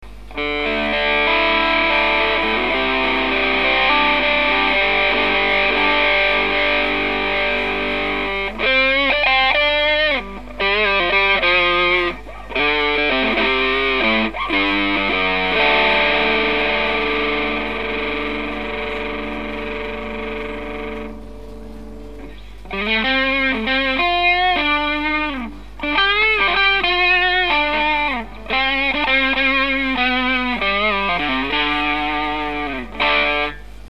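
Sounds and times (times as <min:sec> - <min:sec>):
Bazz Fuss fuzz guitar: 0:00.0 - 0:33.8.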